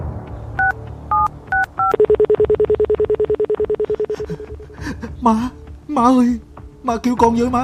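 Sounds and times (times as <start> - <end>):
two-tone telephone keypad beeps: 0.6 - 4.6
speech: 5.2 - 7.6.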